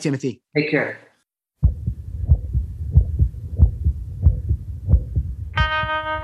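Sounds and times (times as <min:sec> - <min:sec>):
speech: 0:00.0 - 0:01.1
recorded human heartbeat thumping: 0:01.6 - 0:06.1.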